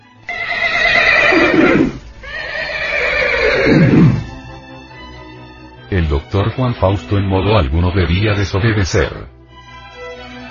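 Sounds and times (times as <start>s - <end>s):
horse neighing loudly: 0.3s - 4.3s
speech: 6.0s - 9.4s.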